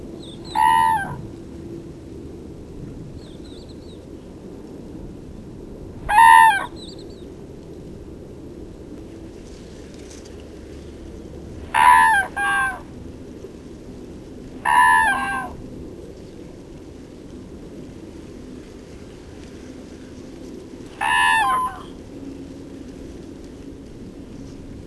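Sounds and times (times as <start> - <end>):
crane giving loud, harsh trumpeting calls: 0.0 - 1.3, 11.6 - 13.0, 14.6 - 15.6, 20.9 - 22.0
steady low background noise: 0.0 - 24.8.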